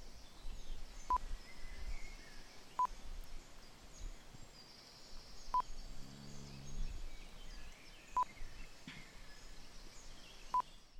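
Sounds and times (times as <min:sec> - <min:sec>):
outdoor noise: 0:00.0 - 0:10.9
cattle mooing in a valley: 0:06.0 - 0:07.0.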